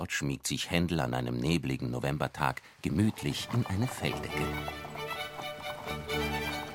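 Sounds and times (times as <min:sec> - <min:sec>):
speech: 0:00.0 - 0:04.8, 0:05.8 - 0:06.6
horse hooves of a horse-drawn carriage clip-clopping on a foggy November day: 0:03.1 - 0:06.7
horse-drawn carriage wheels rumbling: 0:03.1 - 0:06.7.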